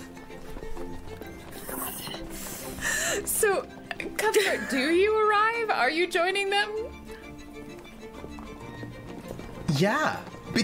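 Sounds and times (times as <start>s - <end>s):
horse hooves clip-clopping at a trot: 0.0s - 2.8s, 7.0s - 10.6s
speech: 3.2s - 6.8s, 9.8s - 10.6s.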